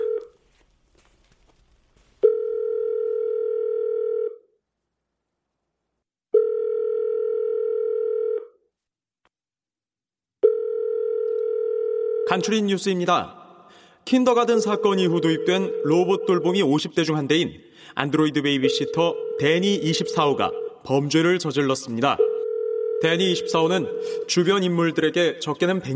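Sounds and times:
telephone ringback tone for an unanswered call: 0.0s - 0.4s, 2.2s - 4.4s, 6.4s - 8.5s, 10.4s - 12.3s, 22.3s - 23.0s
speech: 12.4s - 13.4s, 14.0s - 22.3s, 23.0s - 25.9s.

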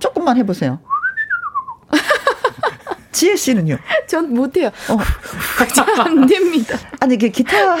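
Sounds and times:
speech: 0.2s - 1.0s, 3.1s - 7.7s
person whistling a wavering tone and swooping notes: 0.9s - 1.8s
laughter: 1.9s - 3.1s, 5.0s - 7.0s.

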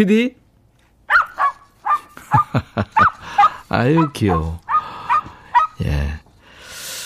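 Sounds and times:
speech: 0.0s - 0.4s, 2.3s - 4.6s, 5.8s - 6.2s
small puppy yapping: 1.1s - 5.8s
laughter: 2.0s - 4.6s.

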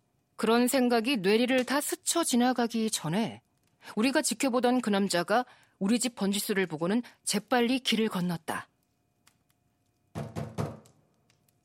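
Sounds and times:
speech: 0.4s - 8.7s
heavy knocking on a door: 10.2s - 10.9s.

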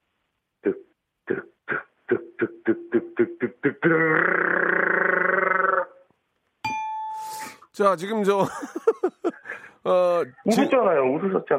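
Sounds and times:
speech: 0.6s - 1.4s, 2.7s - 5.3s, 7.8s - 9.1s, 9.8s - 11.5s
voice imitating a vibrating massage chair: 3.1s - 6.1s
brief chime-like tone with breathy noise: 6.7s - 7.6s
laughter: 8.3s - 11.5s.

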